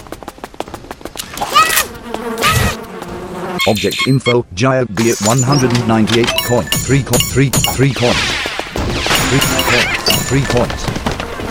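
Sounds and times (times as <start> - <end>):
swarm of bees buzzing: 1.3 - 4.4, 5.1 - 6.7, 9.1 - 11.4
speech: 3.6 - 8.4, 9.0 - 11.0.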